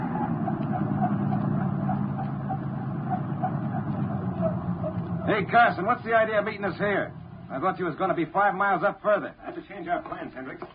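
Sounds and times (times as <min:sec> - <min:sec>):
car driving up on a road and stopping: 0:00.0 - 0:08.4
speech: 0:05.3 - 0:10.7.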